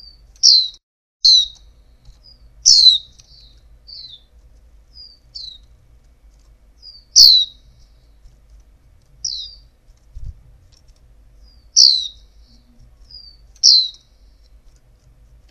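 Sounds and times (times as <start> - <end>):
female white-eye giving high down-slurred chirps: 0.0 - 4.3, 4.9 - 5.8, 6.8 - 8.0, 9.2 - 9.8, 11.4 - 14.6
low background hum: 0.0 - 15.4.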